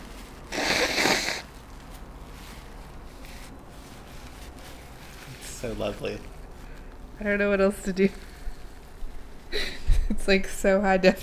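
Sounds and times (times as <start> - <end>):
person forcefully blowing their nose: 0.4 - 1.5
speech: 5.6 - 6.3, 7.2 - 8.3, 10.3 - 11.2.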